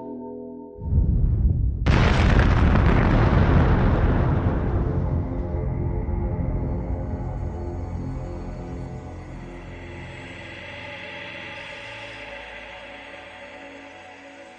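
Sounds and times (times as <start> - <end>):
faint rumble: 0.8 - 7.6
fire blast explosion: 0.9 - 5.9.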